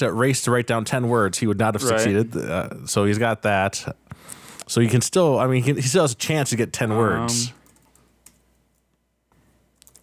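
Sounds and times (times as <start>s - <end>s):
speech: 0.0s - 7.6s
low hum: 0.0s - 10.0s
typing on a computer keyboard: 7.6s - 8.8s, 9.8s - 10.0s.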